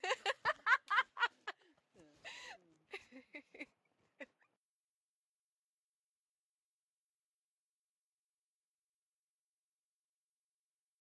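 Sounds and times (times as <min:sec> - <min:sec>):
woman laughing: 0:00.0 - 0:04.4.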